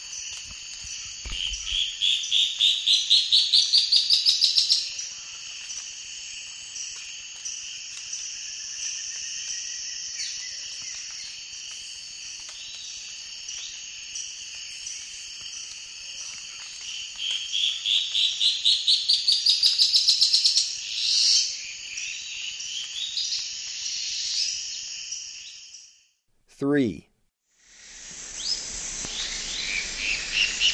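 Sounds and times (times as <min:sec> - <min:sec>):
insect chorus in the eastern lowlands of South America: 0:00.0 - 0:26.0, 0:27.6 - 0:30.7
Dusky-throated antshrike song in the eastern lowlands of South America: 0:26.5 - 0:27.1
speech: 0:26.6 - 0:27.1.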